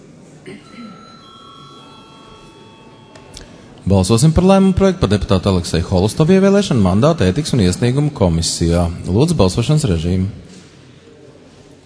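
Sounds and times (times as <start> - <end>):
speech: 0.4 - 1.1, 3.9 - 10.5
electronic bell ringing in a council session: 0.8 - 4.4.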